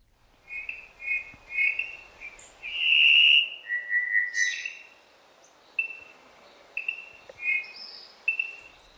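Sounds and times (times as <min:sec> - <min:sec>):
Cuban solitaire (Myadestes elisabeth) singing in Cuba: 0:00.4 - 0:04.9, 0:05.8 - 0:06.2, 0:06.8 - 0:08.9.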